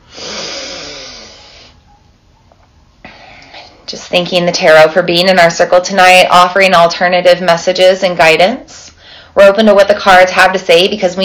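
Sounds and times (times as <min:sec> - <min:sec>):
long deep breath at the start of a tarot reading: 0:00.0 - 0:01.8, 0:09.0 - 0:09.4
speech: 0:03.9 - 0:08.8, 0:09.4 - 0:11.2.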